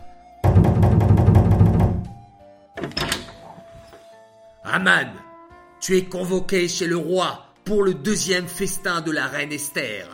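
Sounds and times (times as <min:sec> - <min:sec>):
heavy knocking on a door: 0:00.4 - 0:02.3
speech: 0:04.8 - 0:05.2, 0:05.8 - 0:10.1.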